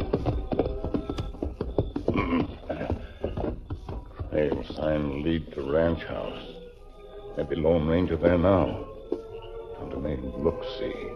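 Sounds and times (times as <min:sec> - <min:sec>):
white stallion and second horse hooves clip-clopping: 0:00.0 - 0:11.1
speech: 0:04.4 - 0:06.6, 0:07.4 - 0:08.9, 0:10.0 - 0:11.1.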